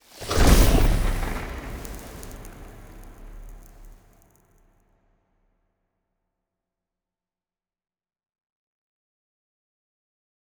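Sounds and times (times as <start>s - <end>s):
corvette ship moving: 0.1s - 4.0s.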